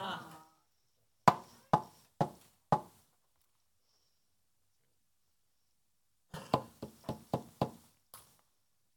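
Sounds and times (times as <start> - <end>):
knocking on a door: 1.3 - 2.9, 6.4 - 7.8.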